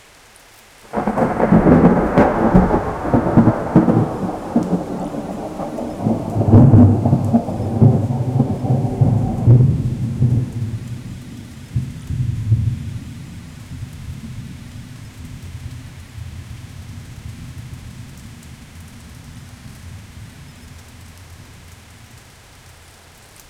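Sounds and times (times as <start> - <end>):
rain in a jungle: 0.0 - 23.4.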